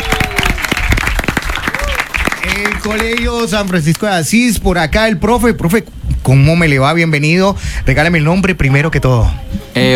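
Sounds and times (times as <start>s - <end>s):
audience at a school event applauding: 0.0s - 4.1s
speech: 2.4s - 9.9s.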